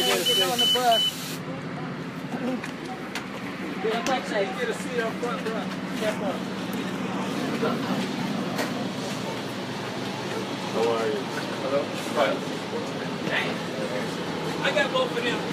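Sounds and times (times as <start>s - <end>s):
brief electronic beep: 0.0s - 1.2s
city bus engine idling: 0.0s - 15.5s
speech: 0.7s - 1.6s, 2.4s - 2.8s, 3.8s - 6.8s, 7.6s - 8.2s, 10.8s - 15.5s.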